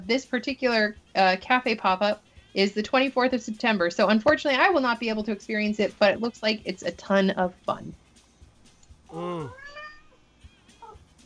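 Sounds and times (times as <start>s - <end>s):
speech: 0.1s - 8.0s, 9.1s - 9.6s
cat meowing: 9.4s - 10.2s.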